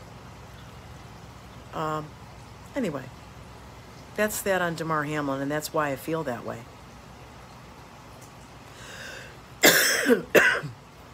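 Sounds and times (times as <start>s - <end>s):
speech: 1.8s - 2.2s, 2.8s - 3.2s, 4.2s - 6.7s, 10.1s - 10.4s
harsh raspy coughs: 9.6s - 10.8s.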